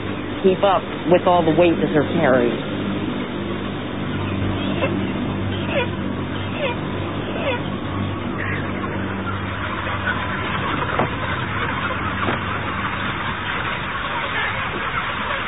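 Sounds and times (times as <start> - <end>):
constant low mechanical hum: 0.0 - 15.4
dense murmur of many broiler chickens in a crowded chicken house: 0.0 - 15.4
speech: 0.4 - 2.7.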